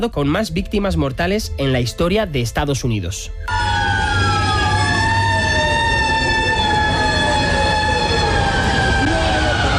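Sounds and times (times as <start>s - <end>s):
speech: 0.0s - 3.7s
dense rumble of traffic and engine noise: 3.5s - 9.7s
fire truck sirens wailing in city streets: 3.5s - 9.7s.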